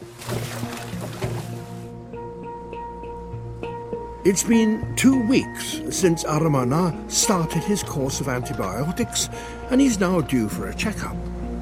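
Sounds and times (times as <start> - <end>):
faint watery trickles: 0.0 - 1.9
huge block of salt emptied into water at manatee pools: 0.1 - 1.6
speech: 4.2 - 11.3.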